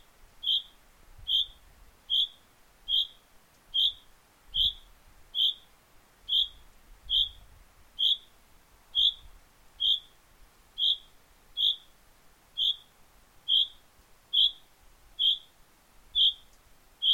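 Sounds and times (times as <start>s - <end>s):
Common chaffinch calling: 0.4s - 5.7s, 6.3s - 7.4s, 8.0s - 8.3s, 8.9s - 10.2s, 10.8s - 12.0s, 12.6s - 12.9s, 13.5s - 17.1s.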